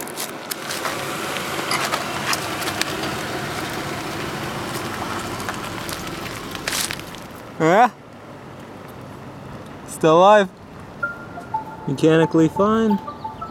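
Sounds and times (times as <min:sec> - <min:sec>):
brief crackles and clicks: 0:00.0 - 0:07.5
car engine and tires rumbling while rolling slowly over a beetle: 0:00.0 - 0:13.4
speech: 0:10.0 - 0:10.6, 0:11.9 - 0:13.1.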